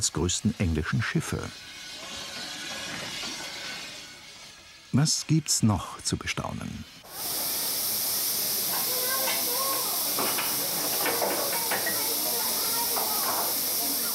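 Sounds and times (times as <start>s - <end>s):
speech: 0.0s - 1.8s, 4.9s - 7.4s
small steam locomotive hissing steam: 0.0s - 14.1s
faint voices murmuring: 8.2s - 14.1s.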